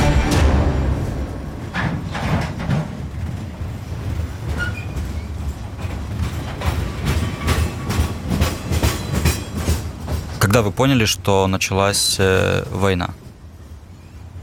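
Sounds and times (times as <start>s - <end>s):
train rolling along rails with rhythmic clickety-clack: 0.1s - 11.3s
speech: 10.6s - 13.2s.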